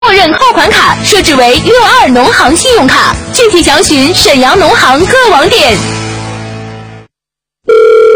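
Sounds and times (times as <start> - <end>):
speech: 0.2 - 6.0
telephone ringing with loud electronic tones: 7.7 - 8.1.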